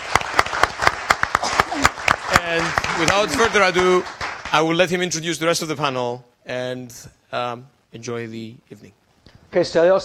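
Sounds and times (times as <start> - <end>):
one person's sharp steady claps: 0.0 - 4.8
small audience applauding: 0.0 - 4.9
speech: 2.5 - 10.0.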